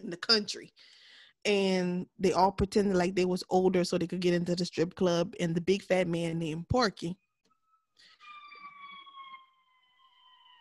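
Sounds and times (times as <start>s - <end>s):
speech: 0.1s - 7.2s
emergency siren wailing outside: 8.2s - 10.6s.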